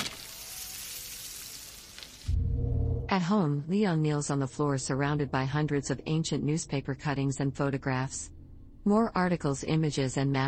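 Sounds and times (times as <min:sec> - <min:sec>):
steak sizzling on a grill: 0:00.0 - 0:02.3
low burst: 0:02.3 - 0:09.6
speech: 0:03.1 - 0:10.4.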